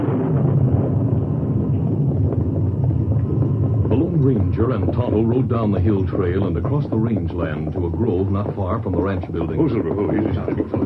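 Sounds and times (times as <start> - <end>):
thunder rumbling: 0.0 - 10.8
speech: 4.2 - 10.8.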